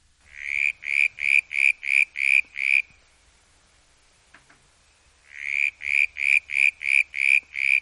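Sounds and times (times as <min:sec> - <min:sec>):
tree frogs calling: 0:00.2 - 0:03.2, 0:05.0 - 0:07.7.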